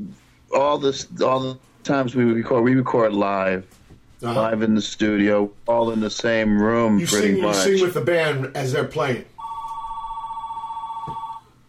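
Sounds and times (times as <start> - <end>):
speech: 0.5 - 9.3
telephone ringing with a warbling electronic trill: 9.4 - 11.6.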